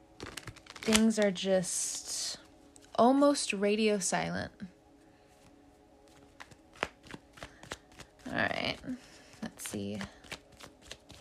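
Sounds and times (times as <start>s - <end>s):
tarot cards being shuffled by hand: 0.1s - 1.3s, 6.1s - 11.1s
speech: 0.8s - 2.2s, 3.0s - 4.7s.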